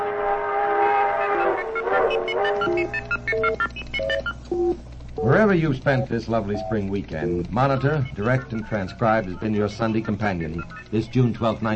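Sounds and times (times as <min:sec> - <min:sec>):
express train horn blaring a sustained chord: 0:00.0 - 0:02.9
speech: 0:02.2 - 0:11.7.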